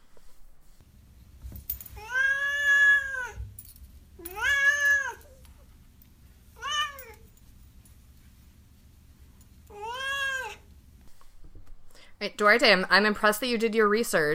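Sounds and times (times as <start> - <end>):
cat meowing with long drawn-out cries: 2.0 - 3.4, 4.2 - 5.4, 6.6 - 7.2, 9.7 - 10.6
speech: 12.4 - 14.3.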